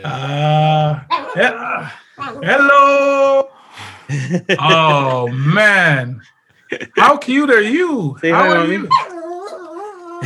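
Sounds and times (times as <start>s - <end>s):
speech: 0.0s - 3.5s, 4.1s - 9.1s
laughter: 0.0s - 7.4s
dog barking to be let in with a long whining bark: 8.4s - 10.1s.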